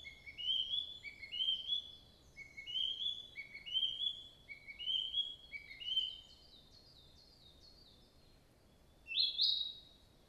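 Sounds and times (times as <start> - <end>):
Narcissus flycatcher singing: 0.0 - 6.3, 9.1 - 9.8.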